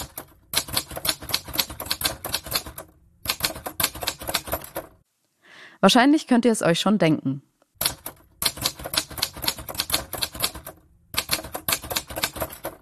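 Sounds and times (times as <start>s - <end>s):
typewriter keys clacking: 0.0s - 5.0s, 7.8s - 12.8s
speech: 5.8s - 7.5s.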